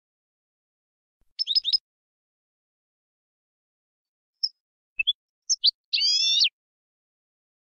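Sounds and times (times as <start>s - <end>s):
European goldfinch song: 1.3s - 1.8s, 4.4s - 6.6s.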